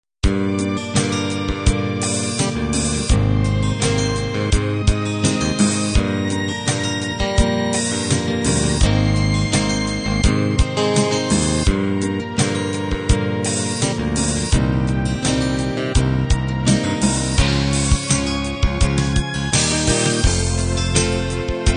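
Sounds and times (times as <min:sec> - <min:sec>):
guitar ballad: 0:00.2 - 0:21.7.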